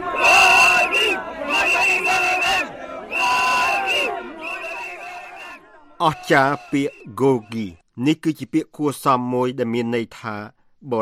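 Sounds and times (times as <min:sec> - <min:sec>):
crowd of thousands chanting at an airport in Dhaka: 0:00.0 - 0:07.6
speech: 0:06.0 - 0:11.0.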